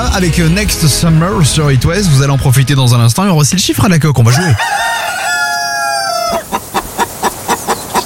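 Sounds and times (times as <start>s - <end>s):
speech: 0.2s - 5.0s
hen clucking in a radio jingle: 4.3s - 8.0s
rooster crowing in a radio jingle: 4.3s - 8.0s.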